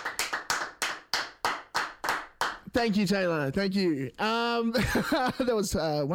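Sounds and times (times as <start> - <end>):
live studio audience clapping in rhythm: 0.0 - 2.9
speech: 2.8 - 6.1
laughter: 4.7 - 5.8.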